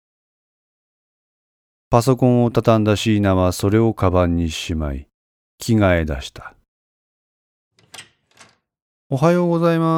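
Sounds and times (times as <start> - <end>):
speech: 1.9 - 6.6, 9.1 - 9.9
door creaking open: 7.8 - 8.7.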